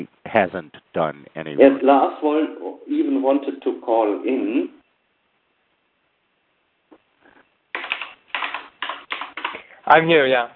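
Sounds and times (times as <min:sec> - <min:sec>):
speech: 0:00.0 - 0:04.8, 0:09.9 - 0:10.5
computer keyboard keys clattering while typing a name into a chat: 0:07.7 - 0:09.7.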